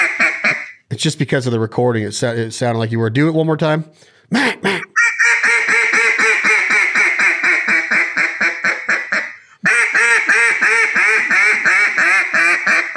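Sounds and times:
duck call blown loud imitating a mallard hail call: 0.0s - 0.8s, 5.0s - 12.9s
speech: 1.0s - 4.9s.

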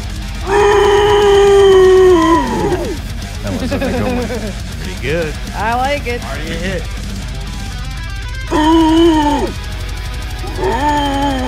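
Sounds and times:
music: 0.0s - 11.4s
person screaming: 0.4s - 3.0s, 8.5s - 9.6s, 10.4s - 11.4s
laughter: 2.2s - 7.0s
speech: 5.0s - 7.0s.

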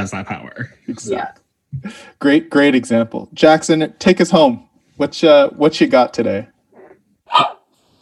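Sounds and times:
speech: 0.0s - 6.5s, 7.3s - 7.6s
single sharp dog bark: 7.3s - 7.7s.

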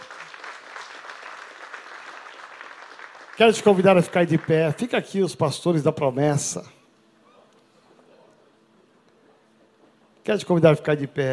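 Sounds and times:
crowd applauding at a church service: 0.0s - 5.0s
speech: 3.4s - 6.8s, 10.3s - 11.3s.

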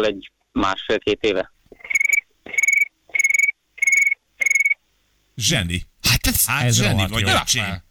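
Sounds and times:
speech: 0.0s - 1.6s, 5.4s - 7.8s
boy imitating a cricket with high buzzing trills: 1.9s - 4.8s.

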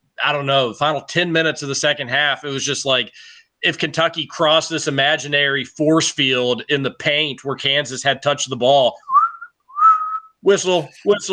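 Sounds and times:
speech: 0.2s - 9.1s, 10.4s - 11.3s
voice imitating a referee's whistle at a basketball game: 9.0s - 11.3s.

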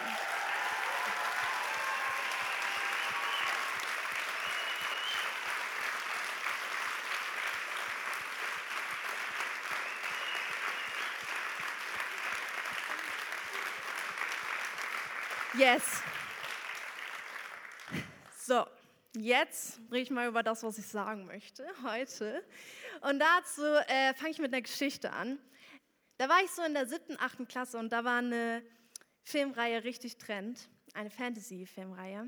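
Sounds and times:
large audience applauding: 0.0s - 18.4s
speech: 15.6s - 16.1s, 18.5s - 25.6s, 26.2s - 32.2s.

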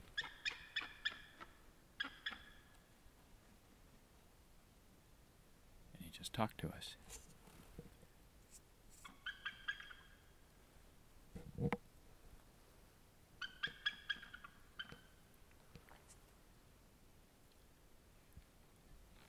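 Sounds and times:
bald eagle chittering in flight: 0.1s - 2.6s, 9.0s - 10.2s, 13.4s - 15.2s
speech: 6.3s - 7.2s.

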